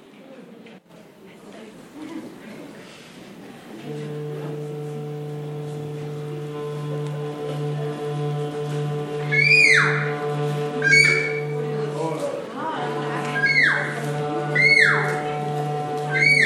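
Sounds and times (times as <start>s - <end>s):
steady low hum: 3.6s - 16.4s
seagulls squawking: 9.3s - 10.2s, 10.8s - 11.5s, 13.3s - 14.0s, 16.1s - 16.4s.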